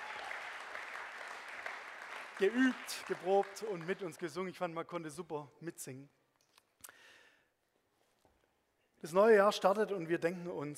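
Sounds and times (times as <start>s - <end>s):
crowd applauding a band: 0.0s - 4.6s
speech: 2.4s - 6.2s, 9.0s - 10.7s.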